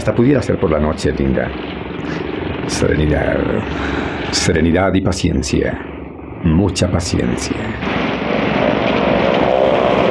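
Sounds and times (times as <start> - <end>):
motorboat engine droning: 0.0 - 4.6, 7.4 - 10.0
speech: 0.0 - 8.0.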